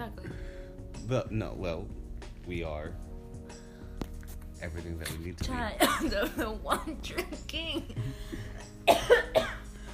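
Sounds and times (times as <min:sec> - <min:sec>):
speech: 0:01.1 - 0:03.1, 0:04.6 - 0:08.6
person coughing: 0:08.0 - 0:09.7.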